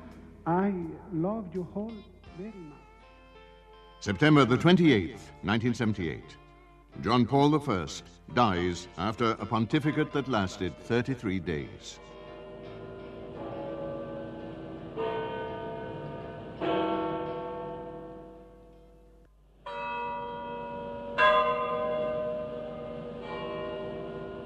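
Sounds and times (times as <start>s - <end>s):
speech: 0.4s - 2.8s, 4.0s - 12.2s
large church bells tolling in Rome to announce a death: 7.1s - 24.4s.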